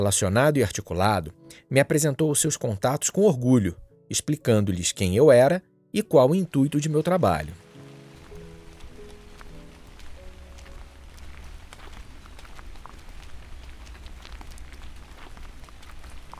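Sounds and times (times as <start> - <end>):
speech: 0.0 - 7.6
steady rain falling in a forest on a centuries-old trail: 6.2 - 16.3
low constant rumble: 10.5 - 16.3.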